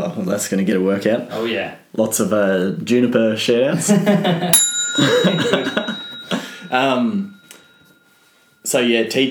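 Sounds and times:
speech: 0.2 - 6.1, 6.7 - 7.3, 8.7 - 9.2
small bell ding: 4.6 - 9.2.

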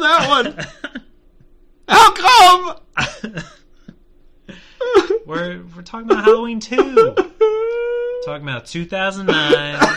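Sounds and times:
speech: 0.0 - 0.9, 1.9 - 3.6, 5.3 - 7.3, 8.2 - 9.9
person coughing in short harsh bursts: 4.8 - 5.2, 6.1 - 7.3, 9.3 - 9.9.

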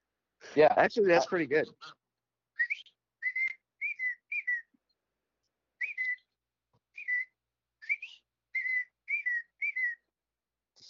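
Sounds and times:
speech: 0.5 - 2.0
person whistling in imitation of a birdcall: 2.6 - 4.8, 5.8 - 10.1.

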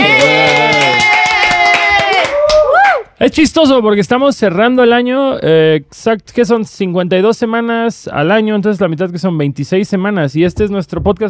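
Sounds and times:
hands clapping in applause for a producer: 0.0 - 3.1
speech: 3.2 - 11.2.

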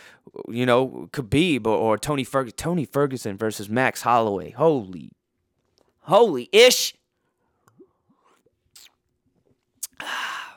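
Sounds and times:
speech: 0.3 - 5.2, 6.1 - 7.0
person sipping a winter lager beer: 8.8 - 9.0, 9.8 - 10.1.

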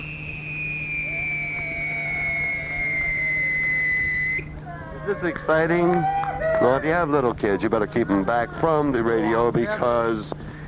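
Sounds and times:
Sneaky Pete whistling firework shrieking: 0.0 - 4.5
low hum: 0.0 - 10.6
speech: 5.1 - 10.4.

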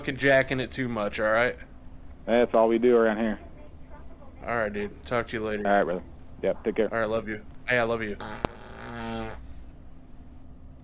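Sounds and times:
speech: 0.0 - 1.7, 2.3 - 3.5, 4.4 - 8.5
faint low hum of noise: 0.0 - 10.8
short buzzy fart noise: 8.2 - 9.6.

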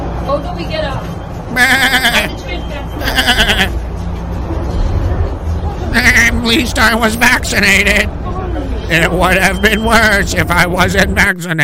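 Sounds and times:
low rumbling noise: 0.0 - 11.6
speech: 0.3 - 3.8, 6.0 - 8.3, 8.9 - 11.6
person imitating sheep bleats: 1.5 - 2.3, 3.0 - 3.8.

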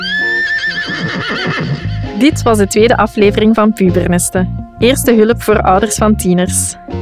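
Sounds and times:
horse neighing: 0.0 - 2.2
speech: 2.2 - 7.0.

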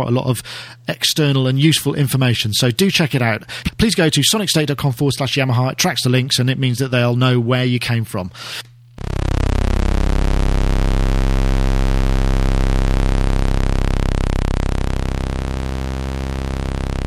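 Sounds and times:
speech: 0.0 - 9.2
sustained software synthesizer tone with a morphing waveform: 9.0 - 17.0.

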